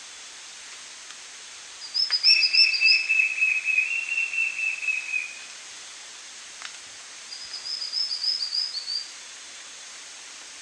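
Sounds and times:
White-shouldered fire-eye Pyriglena leucoptera song: 1.8 - 5.5, 7.3 - 9.1.

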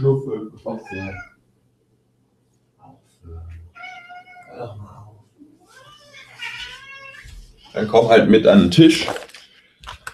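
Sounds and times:
speech: 0.0 - 1.3, 4.6 - 5.0, 7.7 - 9.3
domestic tomcat meowing: 0.7 - 1.4, 3.7 - 4.8, 5.6 - 7.4.

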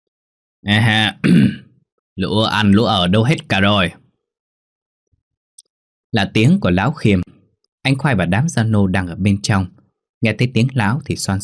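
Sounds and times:
speech: 0.6 - 1.6, 2.2 - 4.0, 6.1 - 11.4
throat clearing outside a gate: 1.1 - 1.8.

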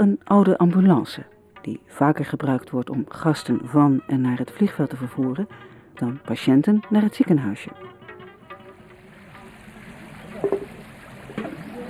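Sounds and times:
speech: 0.0 - 7.9
clear river water flowing through a village: 0.0 - 11.8
splashes or knocks: 8.5 - 11.8.

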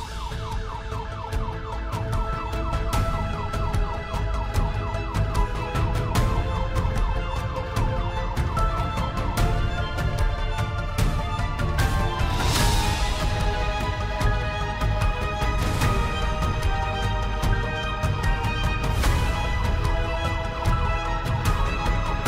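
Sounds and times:
police car sirens wailing: 0.0 - 22.2.

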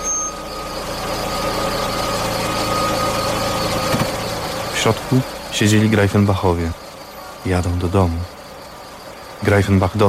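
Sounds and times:
car engine idling on a street after pulling up: 0.0 - 10.0
speech: 4.8 - 6.8, 7.4 - 8.4, 9.4 - 10.0.

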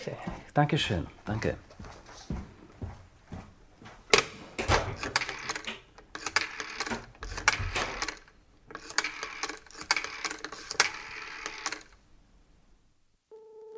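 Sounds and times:
speech: 0.0 - 2.4
telephone dial clicking and whirring while a number is dialed: 5.0 - 12.0.

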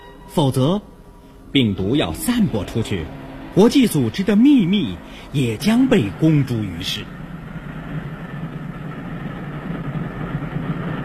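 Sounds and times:
train rumbling: 0.0 - 11.0
speech: 0.4 - 0.9, 1.5 - 7.2.

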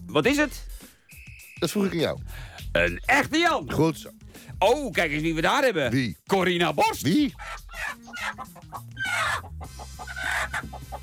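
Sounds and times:
speech: 0.1 - 0.9, 1.6 - 11.0
chicken clucking: 7.3 - 11.0.

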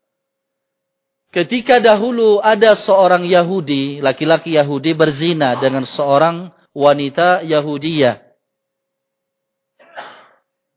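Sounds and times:
speech: 1.3 - 8.2
sneeze: 5.6 - 6.0, 9.8 - 10.5.

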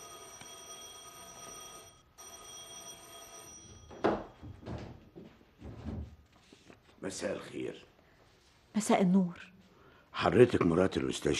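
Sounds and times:
doorbell ringing at the front door of a home: 0.0 - 4.8
speech: 7.0 - 7.9, 8.8 - 9.5, 10.2 - 11.3.

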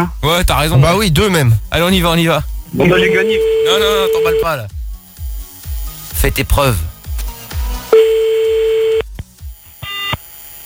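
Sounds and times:
speech: 0.0 - 4.8, 6.2 - 6.9
fax machine tone beeping on a phone line: 2.8 - 4.7, 7.9 - 9.0, 9.8 - 10.2.

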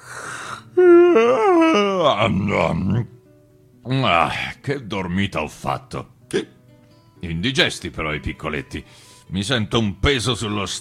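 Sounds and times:
voice imitating a wolf's big yawn on waking: 0.0 - 3.1
speech: 2.1 - 3.2, 3.8 - 6.5, 7.2 - 10.7.

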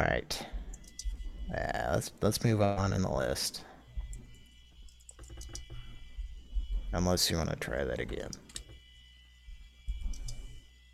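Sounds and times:
speech: 0.0 - 0.5, 1.5 - 3.7, 6.9 - 8.4
quiet typing on a computer keyboard: 5.0 - 5.7, 10.1 - 10.4.

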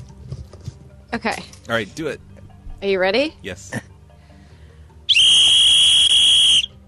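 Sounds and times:
speech: 1.1 - 3.9
whistle blown hard in a long piercing blast: 5.1 - 6.8.

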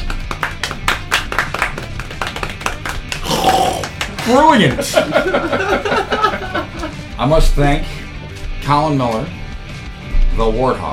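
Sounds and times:
small group clapping softly and politely in a golf clap: 0.0 - 5.3
speech: 4.3 - 6.2, 7.2 - 8.0, 8.7 - 9.4, 10.4 - 10.9
laughter: 4.5 - 7.0.

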